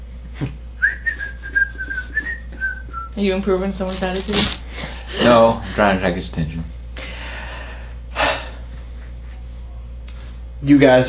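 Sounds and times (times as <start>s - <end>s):
speech: 0.4s - 0.6s, 3.2s - 6.8s, 10.6s - 11.0s
person whistling a steady sustained tone: 0.8s - 3.1s.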